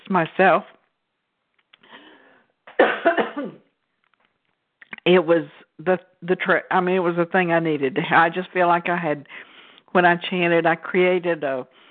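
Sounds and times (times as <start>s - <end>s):
speech: 0.1s - 0.8s, 5.0s - 11.8s
person with something caught in the throat coughing: 2.7s - 3.6s.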